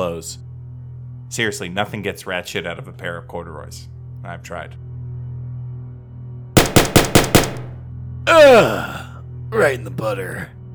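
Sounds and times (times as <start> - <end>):
speech: 0.0 - 0.5, 1.3 - 4.8, 8.3 - 10.6
gunfire on a street: 6.6 - 7.8.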